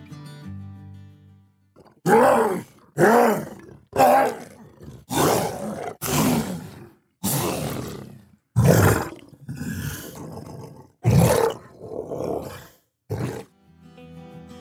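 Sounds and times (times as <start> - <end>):
bloated fungal monster roaring in a video game: 2.1 - 13.4.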